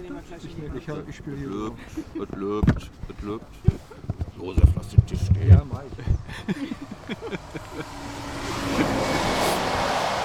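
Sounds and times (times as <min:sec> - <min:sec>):
speech: 0:00.2 - 0:08.4
laughter: 0:01.6 - 0:02.6, 0:05.9 - 0:09.7
gust of wind roaring: 0:04.8 - 0:10.2.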